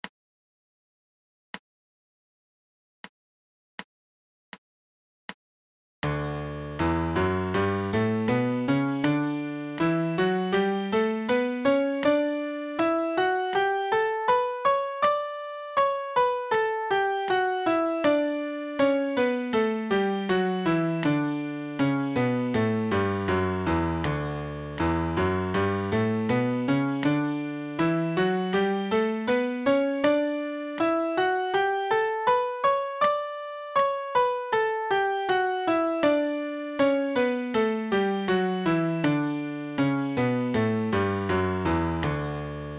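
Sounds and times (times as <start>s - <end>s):
MIDI D major scale played: 6.1s - 42.7s.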